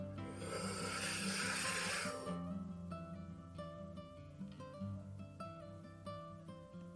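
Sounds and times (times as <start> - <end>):
soft sustained tonal music: 0.0 - 6.9
long loud breath drawn during a guided relaxation exercise: 0.2 - 2.4.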